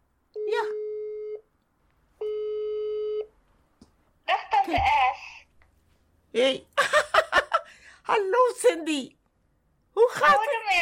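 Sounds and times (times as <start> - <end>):
video call ringing tone: 0.4 - 1.4, 2.2 - 3.3
speech: 4.7 - 5.1, 6.4 - 7.1, 8.1 - 9.2, 10.0 - 10.7
laughter: 6.8 - 7.7.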